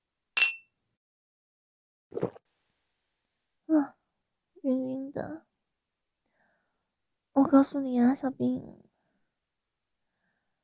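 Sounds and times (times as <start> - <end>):
glasses clinking in a toast: 0.4 - 0.6
speech: 7.5 - 8.8.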